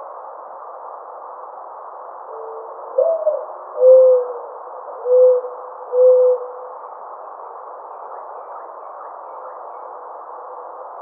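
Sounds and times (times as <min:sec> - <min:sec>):
constant hiss: 0:00.0 - 0:10.9
mourning dove soft cooing: 0:02.4 - 0:06.6.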